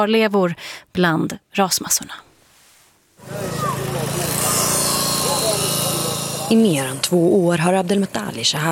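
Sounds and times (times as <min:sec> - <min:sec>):
speech: 0:00.0 - 0:02.3, 0:06.5 - 0:08.7
power saw cutting through steel rebar: 0:03.2 - 0:08.3.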